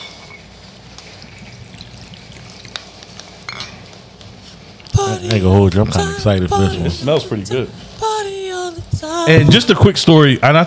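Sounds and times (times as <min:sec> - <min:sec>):
drink pouring into a glass: 0:00.8 - 0:03.6
glass clinks: 0:03.5 - 0:03.8
speech: 0:05.2 - 0:08.0, 0:09.2 - 0:10.6.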